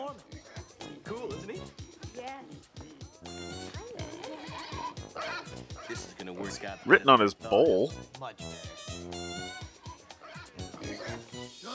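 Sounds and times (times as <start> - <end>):
pig grunting and squealing: 3.4 - 5.4
speech: 6.3 - 9.2.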